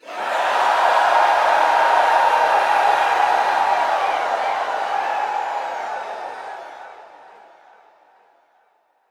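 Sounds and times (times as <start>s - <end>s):
crowd cheering heavily: 0.0s - 8.3s.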